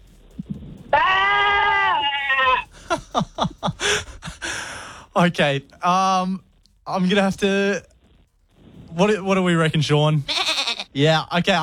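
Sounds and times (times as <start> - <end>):
radio caller imitating a sheep baa: 0.9 - 2.6
laughter: 2.7 - 4.7
speech: 3.2 - 4.2, 5.2 - 7.9, 9.0 - 11.6.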